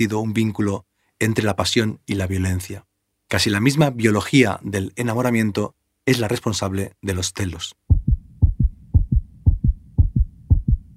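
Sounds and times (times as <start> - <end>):
speech: 0.0 - 7.8
fast heartbeat: 7.9 - 10.9.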